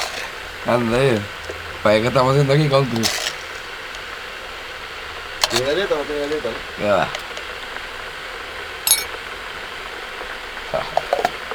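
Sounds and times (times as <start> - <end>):
stovetop coffee maker hissing on the burner: 0.0 - 11.5
speech: 0.6 - 3.2, 5.5 - 7.2
sharp metallic clinks: 8.9 - 9.2.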